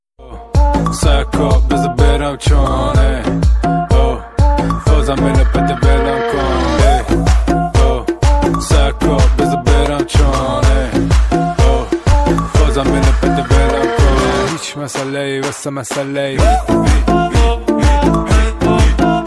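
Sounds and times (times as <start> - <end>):
English instrumental ringtone music: 0.6 - 14.8, 16.4 - 19.2.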